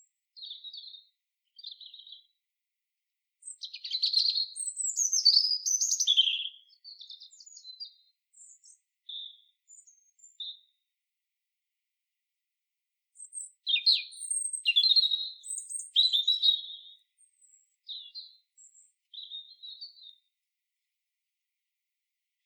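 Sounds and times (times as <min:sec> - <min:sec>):
European robin Erithacus rubecula singing: 0:00.4 - 0:02.3, 0:03.4 - 0:10.8, 0:13.2 - 0:20.3.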